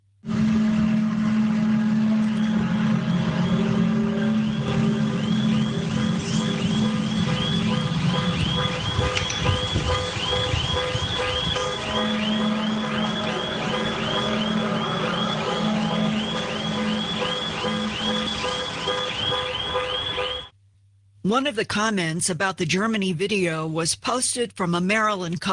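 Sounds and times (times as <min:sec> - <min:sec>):
deep droning horn-like tone: 0:00.2 - 0:20.5
several car alarms warbling and chirping: 0:00.4 - 0:20.5
speech: 0:21.3 - 0:25.5.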